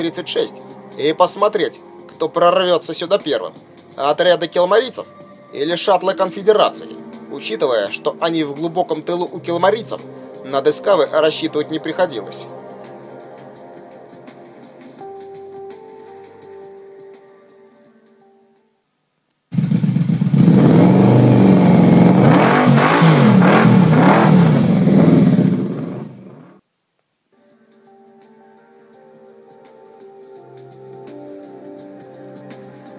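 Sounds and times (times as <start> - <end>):
speech: 0.0 - 12.7
grimy hoverbike engine revving: 19.6 - 26.6.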